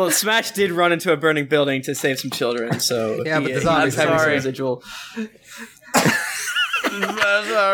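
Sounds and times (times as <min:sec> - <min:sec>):
speech: 0:00.0 - 0:06.2, 0:07.0 - 0:07.7
laughter: 0:02.5 - 0:04.6, 0:05.2 - 0:07.7
person coughing harshly into a microphone: 0:05.9 - 0:06.4.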